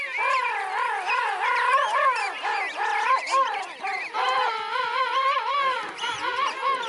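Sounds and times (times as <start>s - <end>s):
penguin warbling calls: 0.0s - 6.8s.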